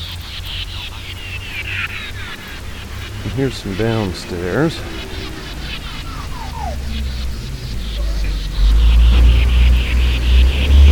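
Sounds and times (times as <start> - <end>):
faint traffic: 0.0 - 10.9
heavy recycling truck engine rumbling on a street: 0.0 - 10.9
road noise: 0.0 - 10.9
speech: 3.4 - 5.0.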